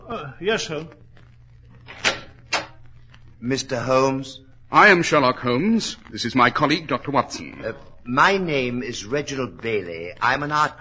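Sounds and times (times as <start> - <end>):
faint hum: 0.0 - 10.8
speech: 0.1 - 1.0, 3.4 - 10.8
door being pulled open for a visitor: 1.9 - 2.7.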